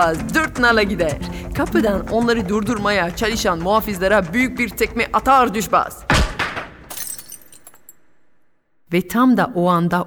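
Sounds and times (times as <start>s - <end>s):
speech: 0.0s - 6.1s, 8.9s - 10.0s
bowl of honey shattering: 6.1s - 8.3s.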